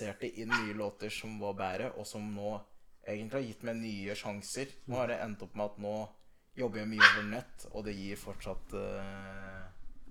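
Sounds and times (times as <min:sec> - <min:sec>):
speech: 0:00.0 - 0:10.0
dog barking: 0:00.5 - 0:00.8, 0:07.0 - 0:07.3.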